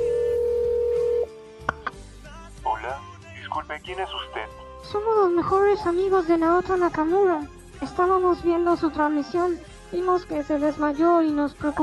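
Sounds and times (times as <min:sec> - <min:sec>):
steady electronic phone tone on speakerphone: 0:00.0 - 0:01.3
man's voice answering through a tinny speakerphone: 0:02.7 - 0:04.6
speech: 0:03.6 - 0:11.8.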